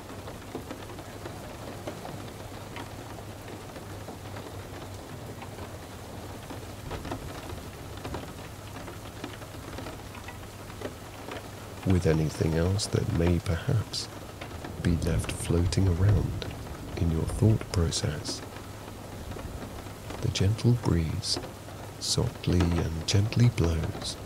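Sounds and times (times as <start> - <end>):
steady rain pattering on surfaces: 0.0 - 24.2
speech: 11.9 - 14.2, 14.8 - 18.5, 20.4 - 24.2.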